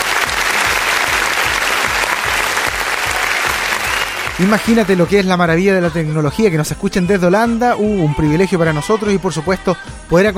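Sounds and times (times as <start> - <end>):
welcoming applause from a crowd: 0.0 - 5.2
speech: 4.4 - 10.3.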